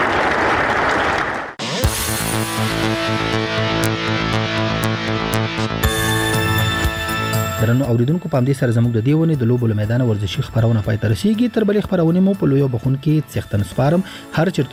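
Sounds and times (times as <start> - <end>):
audience applause at a youth sports display: 0.0 - 1.8
loud music with a steady beat: 1.6 - 7.9
speech: 7.7 - 14.7.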